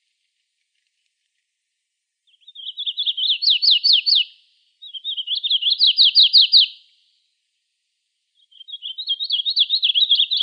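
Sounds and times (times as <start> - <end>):
warbler song in Arizona: 2.2 - 7.3, 8.3 - 10.4.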